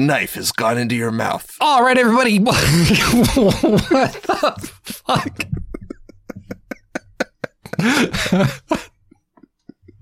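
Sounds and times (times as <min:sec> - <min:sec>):
speech: 0:00.0 - 0:05.6, 0:07.8 - 0:08.9
loud coughing laugh: 0:02.6 - 0:10.0.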